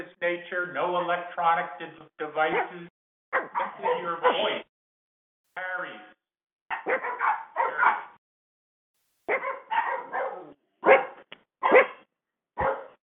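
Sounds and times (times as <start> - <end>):
speech: 0.0 - 4.7, 5.6 - 6.2
dogs barking: 2.5 - 4.7, 6.7 - 8.2, 9.3 - 13.0.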